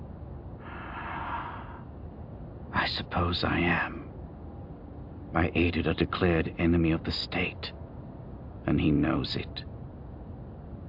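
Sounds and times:
woman inhaling slowly: 0.6s - 1.9s
speech: 2.9s - 4.0s, 5.3s - 7.8s, 8.7s - 9.7s.

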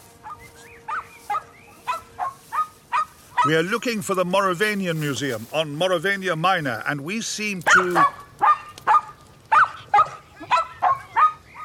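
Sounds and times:
dog barking: 0.2s - 3.6s, 7.6s - 11.6s
speech: 3.4s - 8.2s.

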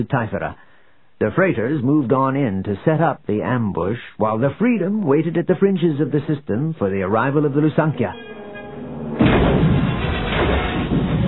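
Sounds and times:
speech: 0.0s - 0.6s, 1.2s - 8.4s
rumbling roar of missile impacts: 8.6s - 11.2s
missiles exploding against a starship's shield in a space battle: 9.2s - 11.2s.

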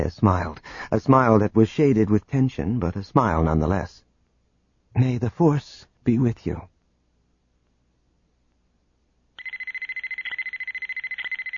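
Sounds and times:
speech: 0.0s - 4.0s, 5.0s - 6.7s
high-pitched electronic alarm beeping: 9.4s - 11.5s.

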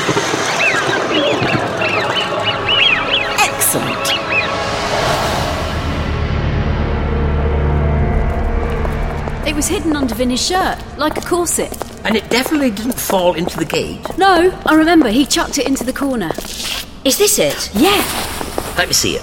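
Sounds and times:
flock of birds chirping and twittering in a dense chorus: 0.0s - 5.0s, 10.0s - 16.4s
rushing whoosh: 2.7s - 8.6s
speech: 9.9s - 19.2s.

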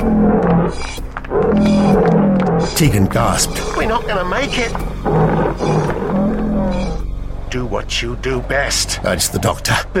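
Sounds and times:
lions roaring: 0.0s - 7.1s
speech: 2.8s - 5.8s, 7.5s - 9.9s.

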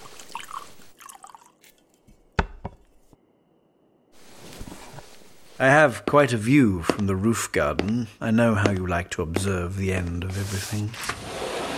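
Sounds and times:
brandy pouring into a glass: 0.0s - 1.8s
speech: 5.6s - 11.2s.

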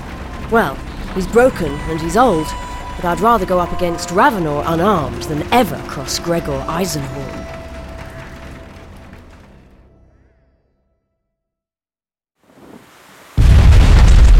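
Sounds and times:
rumbling noise: 0.0s - 10.3s, 13.4s - 14.3s
speech: 0.5s - 7.6s
grenade explosion beneath a striding war machine: 13.4s - 14.3s.

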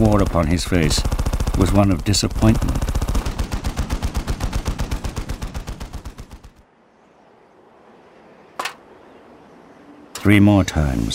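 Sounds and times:
speech: 0.0s - 3.0s, 10.2s - 11.1s
bolter gunfire barrage against an automated turret: 0.0s - 6.6s.

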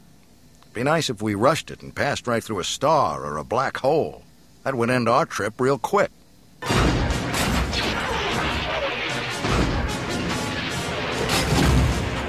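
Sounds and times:
speech: 0.8s - 6.2s
explosions of blaster fire: 6.6s - 12.2s.

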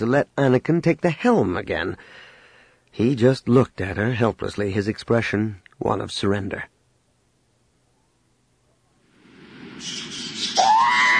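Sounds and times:
speech: 0.0s - 2.2s, 2.9s - 6.7s, 9.8s - 10.6s
harsh electronic hissing: 9.1s - 11.1s
robotic droid screeching and wailing: 9.8s - 11.1s.

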